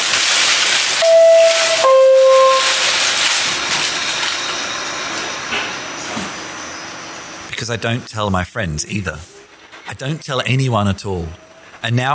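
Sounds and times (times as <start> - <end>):
loud steady hiss of a subway car: 0.1 - 10.3
two-tone subway door chime: 1.0 - 3.2
speech: 7.7 - 9.3, 9.9 - 12.1.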